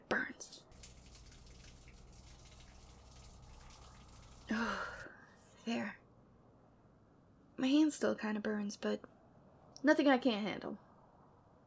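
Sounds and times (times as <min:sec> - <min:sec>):
tap water running over hands: 0:00.6 - 0:05.1
speech: 0:05.7 - 0:06.0, 0:07.6 - 0:09.2, 0:09.8 - 0:10.8.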